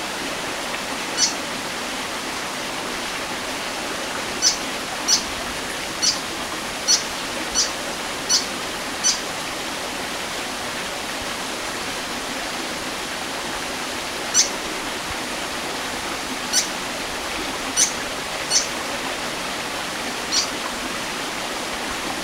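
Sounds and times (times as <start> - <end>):
loud steady rushing water at Mesilau Kinabalu Borneo: 0.0 - 22.2
white-throated fantail squeaky call notes at Mesilau Kinabalu Borneo: 1.2 - 1.4, 4.4 - 5.3, 6.0 - 6.2, 6.9 - 9.2, 14.3 - 14.6, 16.5 - 16.7, 17.8 - 18.7, 20.3 - 20.5.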